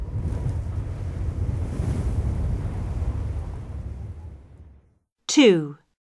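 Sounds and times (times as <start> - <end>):
wind roaring and gusting: 0.0 - 4.9
speech: 5.3 - 5.8.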